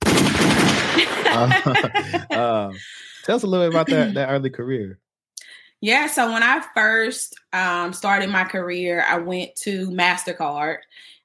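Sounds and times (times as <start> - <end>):
rapid automatic weapon gunfire: 0.0 - 1.3
laughter: 1.0 - 4.9
speech: 1.4 - 5.0, 5.8 - 11.1.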